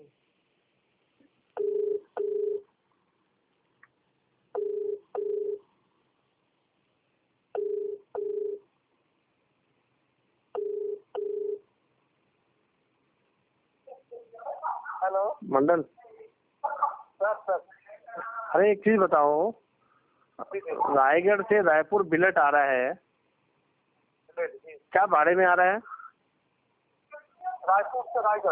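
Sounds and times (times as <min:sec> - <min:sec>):
double-pulse ringback tone over a speakerphone: 0:01.6 - 0:02.7, 0:04.6 - 0:05.6, 0:07.6 - 0:08.6, 0:10.6 - 0:11.6
speech: 0:15.1 - 0:16.0, 0:18.5 - 0:19.7, 0:20.4 - 0:23.1, 0:24.4 - 0:25.9, 0:27.7 - 0:28.5.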